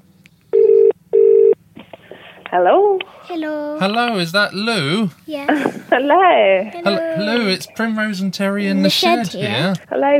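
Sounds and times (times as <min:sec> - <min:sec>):
faint low hum: 0:00.0 - 0:10.1
telephone ringback tone: 0:00.6 - 0:01.6
speech: 0:02.5 - 0:10.1.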